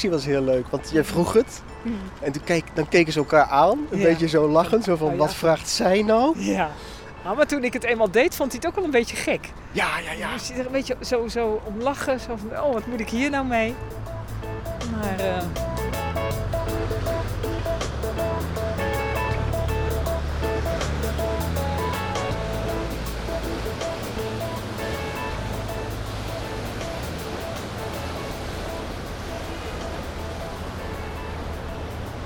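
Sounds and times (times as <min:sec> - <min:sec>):
speech: 0:00.0 - 0:14.2, 0:15.0 - 0:16.6
large container ship deep engine drone: 0:13.9 - 0:32.2
waves washing and splashing: 0:14.8 - 0:32.2.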